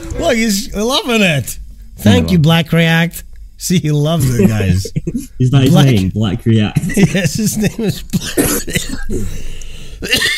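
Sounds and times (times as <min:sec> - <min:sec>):
speech: 0:00.2 - 0:10.3
harsh cough from a person with bronchitis: 0:06.8 - 0:09.3, 0:10.0 - 0:10.3
person clearing throat: 0:08.1 - 0:09.3, 0:10.0 - 0:10.3.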